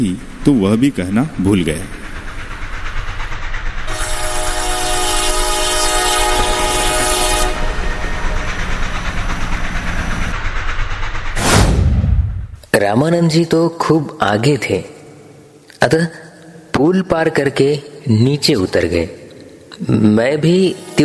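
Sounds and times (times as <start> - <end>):
speech: 0.0 - 2.1, 12.8 - 15.0, 15.8 - 16.2, 16.8 - 19.2, 19.8 - 21.0
train rumbling: 0.0 - 14.6, 18.4 - 21.0
train horn blast: 3.9 - 8.5.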